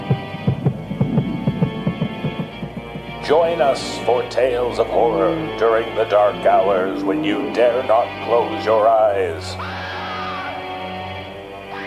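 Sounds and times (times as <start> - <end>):
heavy pounding heartbeat: 0.0 - 5.1
droning hum: 0.0 - 8.2
speech: 3.3 - 9.7.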